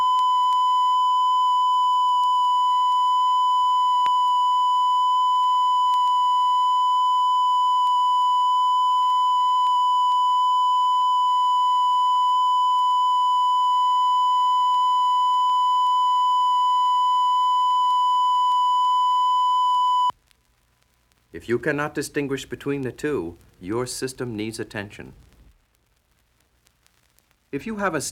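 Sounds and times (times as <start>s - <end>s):
heavily distorted one-thousand-cycle test tone: 0.0s - 20.1s
speech: 21.4s - 25.3s, 27.5s - 28.0s.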